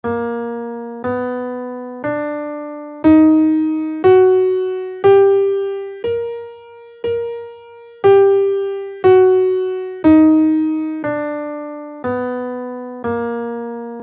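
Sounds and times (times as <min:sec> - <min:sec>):
guitar playing augmented mode 2 scale in B flat: 0:03.0 - 0:13.0.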